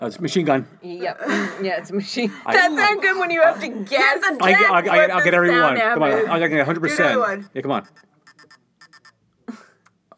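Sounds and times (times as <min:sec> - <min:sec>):
speech: 0:00.0 - 0:08.6
laughter: 0:01.1 - 0:07.4
alarm clock beeping with sharp electronic tones: 0:05.3 - 0:09.2.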